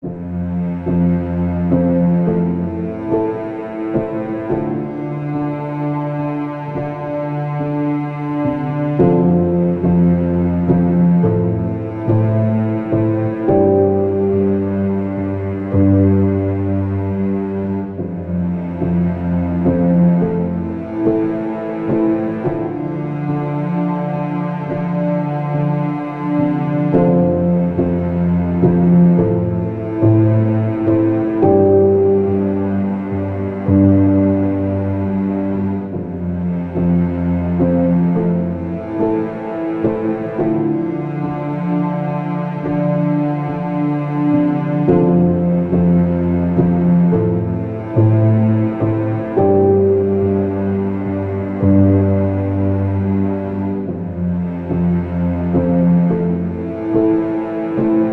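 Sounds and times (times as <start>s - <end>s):
relaxing piano and strings underscore: 0.0s - 58.1s.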